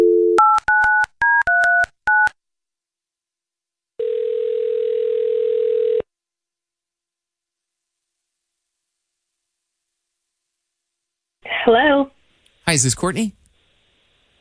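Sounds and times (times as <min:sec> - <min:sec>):
telephone dial tone: 0:00.0 - 0:02.3, 0:04.0 - 0:06.1
speech: 0:12.7 - 0:13.4.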